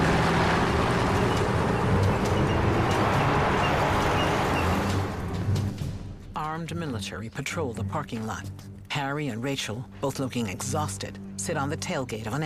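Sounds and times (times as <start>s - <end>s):
armored personnel carriers and military trucks arriving with heavy engines roaring: 0.0s - 6.2s
speech: 6.7s - 12.4s.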